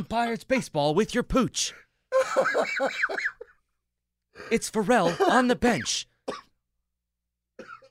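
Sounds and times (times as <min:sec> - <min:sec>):
speech: 0:00.0 - 0:03.4, 0:04.4 - 0:06.5
person coughing: 0:05.0 - 0:05.6, 0:06.2 - 0:06.6, 0:07.6 - 0:07.9.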